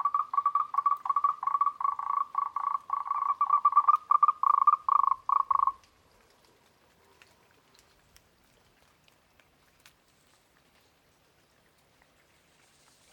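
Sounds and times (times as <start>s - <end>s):
Moltrecht's green treefrog chorus: 0.0s - 5.8s.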